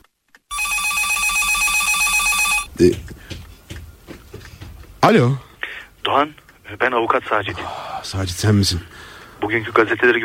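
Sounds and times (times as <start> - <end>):
telephone bell ringing: 0.5 - 2.7
speech: 2.8 - 3.3, 5.0 - 5.4, 6.0 - 10.2.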